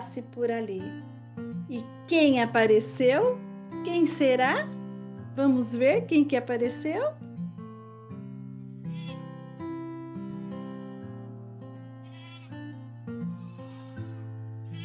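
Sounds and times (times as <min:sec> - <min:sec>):
speech: 0:00.2 - 0:04.8, 0:05.4 - 0:07.2
goat and her kids bleating: 0:08.9 - 0:09.3, 0:12.0 - 0:12.7, 0:14.7 - 0:14.8.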